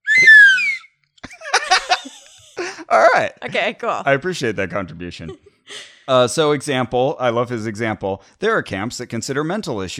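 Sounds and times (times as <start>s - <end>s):
slide whistle swooping down: 0.0s - 0.9s
people laughing: 1.2s - 5.4s
speech: 2.9s - 9.9s.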